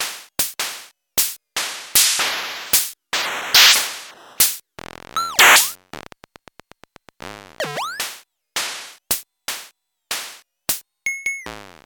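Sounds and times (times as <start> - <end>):
pitched drum pads: 0.0 - 4.4, 5.2 - 5.7, 7.8 - 10.8.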